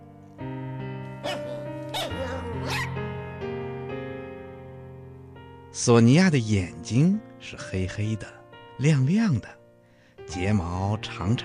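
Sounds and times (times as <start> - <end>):
steady musical background: 0.0 - 11.4
small dog yipping: 1.2 - 2.9
speech: 5.8 - 9.6, 10.3 - 11.4.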